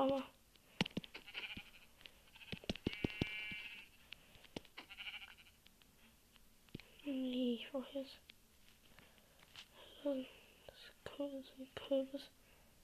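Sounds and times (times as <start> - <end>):
speech: 0.0 - 0.4, 7.6 - 8.3, 10.0 - 10.4, 11.1 - 12.4
sharp clicking and tapping sounds: 0.0 - 4.9
black sheep bleating: 1.1 - 3.9, 4.8 - 5.6.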